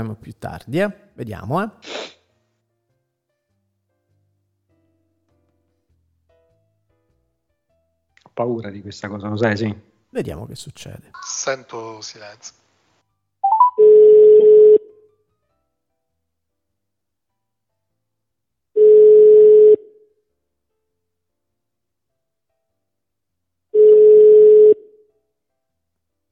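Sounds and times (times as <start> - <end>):
speech: 0.0 - 2.1, 8.4 - 12.6
telephone ringback tone during a call: 13.4 - 14.9, 18.8 - 19.9, 23.8 - 24.9.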